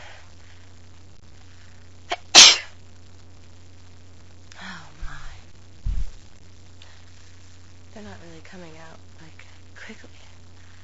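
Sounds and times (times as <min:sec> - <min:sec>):
faint low hum: 0:00.0 - 0:10.8
person sneezing: 0:02.1 - 0:02.8
speech: 0:08.0 - 0:10.3.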